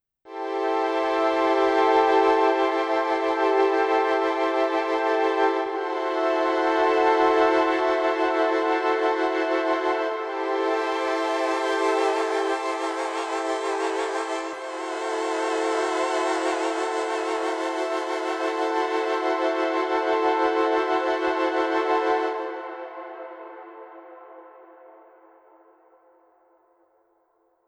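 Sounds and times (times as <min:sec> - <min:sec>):
vibing synth pads: 0:00.3 - 0:25.0.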